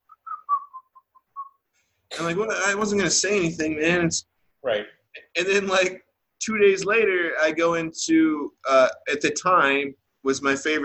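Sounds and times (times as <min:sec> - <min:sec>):
man whistling a short casual tune: 0:00.0 - 0:01.6
speech: 0:02.2 - 0:10.8.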